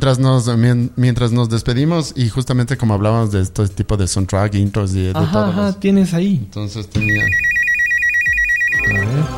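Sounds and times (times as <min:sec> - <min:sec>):
speech: 0:00.0 - 0:07.6
telephone ringtone: 0:07.0 - 0:09.2.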